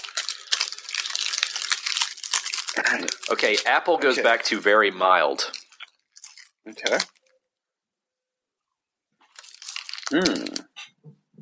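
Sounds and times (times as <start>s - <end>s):
plastic wrappers of fruit hard candies crinkling as they are opened: 0.0s - 7.4s, 9.2s - 10.8s
speech: 2.8s - 5.6s, 6.6s - 7.2s, 10.1s - 10.7s.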